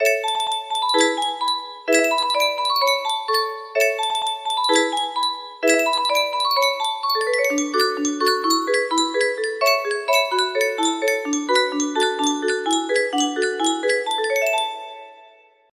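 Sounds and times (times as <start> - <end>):
music box: 0.0 - 15.6.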